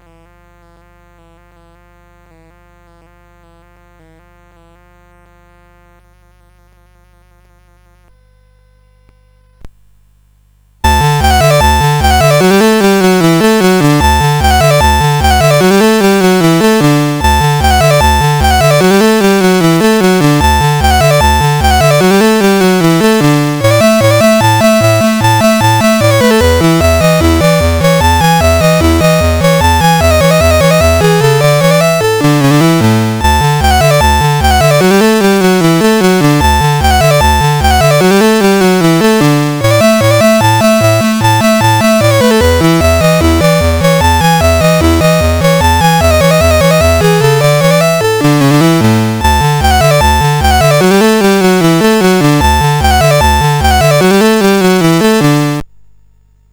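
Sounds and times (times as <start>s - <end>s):
musette: 10.8s - 55.6s.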